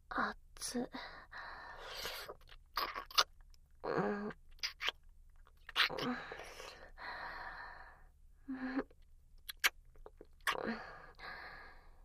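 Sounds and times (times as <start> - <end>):
speech: 0.6 - 1.2
gentle breaths: 0.9 - 2.4, 6.0 - 9.0, 10.7 - 12.0
soft wet kissing sounds: 2.5 - 3.3, 4.5 - 6.2, 9.4 - 10.6.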